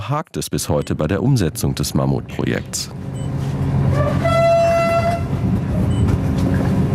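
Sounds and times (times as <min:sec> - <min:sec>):
speech: 0:00.1 - 0:03.2
express passenger train departing station in sleet: 0:01.4 - 0:06.9
train horn blast: 0:03.9 - 0:05.4.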